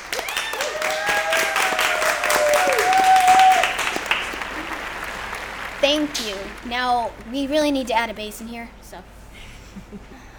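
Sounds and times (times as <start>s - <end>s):
audience cheers: 0.0s - 6.5s
audience applauding host: 0.0s - 7.5s
speech: 5.9s - 9.2s.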